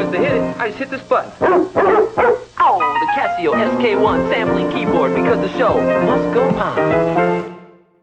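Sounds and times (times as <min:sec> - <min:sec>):
speech: 0:00.1 - 0:02.0, 0:03.4 - 0:07.5
dog barks sampled on a Casio SK1 keyboard played at different pitches: 0:01.4 - 0:02.5.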